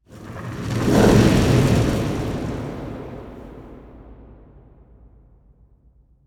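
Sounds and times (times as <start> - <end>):
ambient fireball flyby: 0.0 - 4.0.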